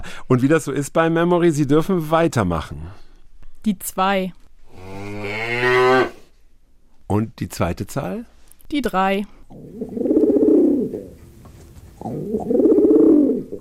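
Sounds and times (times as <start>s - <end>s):
speech: 0.2s - 4.9s, 7.1s - 9.8s, 12.0s - 12.6s
cow mooing: 4.7s - 6.2s
pigeon cooing: 9.5s - 13.5s.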